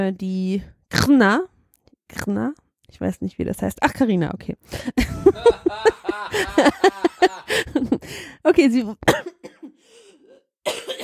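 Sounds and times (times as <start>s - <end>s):
speech: 0.0s - 1.5s, 2.1s - 9.6s, 10.6s - 11.0s
laughter: 5.0s - 8.2s
person coughing with a hoarse rasp: 9.1s - 11.0s.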